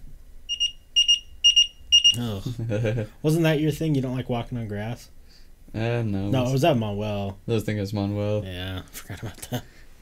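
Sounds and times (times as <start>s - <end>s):
short high-pitched electronic beeps: 0.5s - 2.2s
speech: 2.1s - 9.7s.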